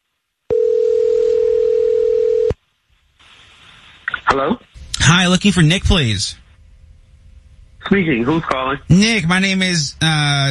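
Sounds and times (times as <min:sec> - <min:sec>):
telephone dial tone: 0:00.5 - 0:02.6
hiss on telephone line: 0:03.2 - 0:04.2
speech: 0:04.4 - 0:06.4, 0:07.9 - 0:10.4.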